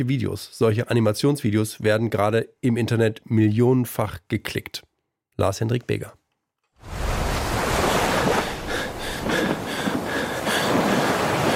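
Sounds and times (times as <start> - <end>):
speech: 0.0 - 6.2
ocean waves on open sea: 6.8 - 11.5.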